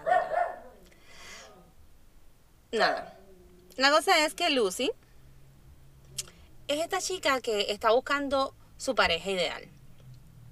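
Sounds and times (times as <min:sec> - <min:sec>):
small dogs barking: 0:00.0 - 0:00.9, 0:02.8 - 0:03.5
speech: 0:02.7 - 0:03.2, 0:03.8 - 0:05.0, 0:06.7 - 0:09.8.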